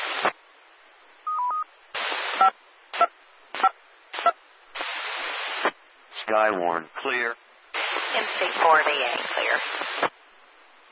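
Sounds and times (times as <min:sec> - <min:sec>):
bursts of radio hiss: 0:00.0 - 0:00.4, 0:01.9 - 0:10.2
DTMF touch-tone beeps sent to an amateur radio repeater: 0:01.3 - 0:01.7
speech: 0:06.3 - 0:07.4, 0:08.1 - 0:10.1.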